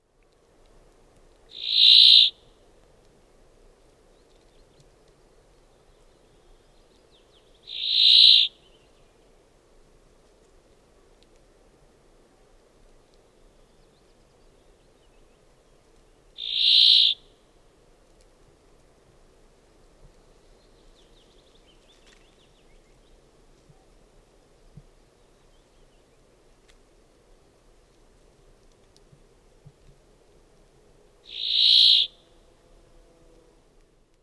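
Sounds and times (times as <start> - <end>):
brambling calling: 7.7 - 8.5, 16.4 - 17.2, 31.3 - 32.2.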